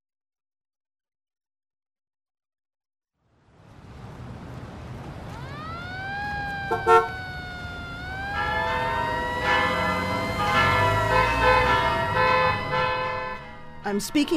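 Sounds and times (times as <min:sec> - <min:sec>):
sustained tonal drone: 0:05.5 - 0:14.3
bells ringing in New York City as evacuation warning: 0:08.2 - 0:14.3
speech: 0:13.9 - 0:14.3.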